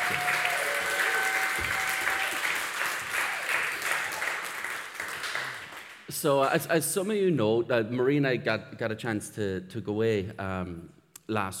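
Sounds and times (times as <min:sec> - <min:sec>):
audience applause: 0:00.0 - 0:06.1
speech: 0:06.2 - 0:11.5.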